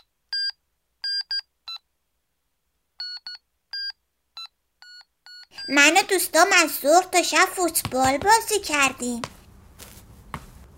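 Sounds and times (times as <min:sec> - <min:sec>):
telephone touch-tone dialing beeps: 0:03.0 - 0:05.8
speech: 0:05.7 - 0:09.4.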